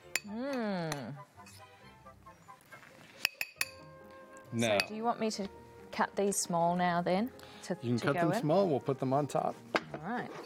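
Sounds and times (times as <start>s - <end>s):
person humming a gliding tone: 0.2s - 1.2s
utensil clinking against a bowl: 3.2s - 3.8s
speech: 4.5s - 10.4s.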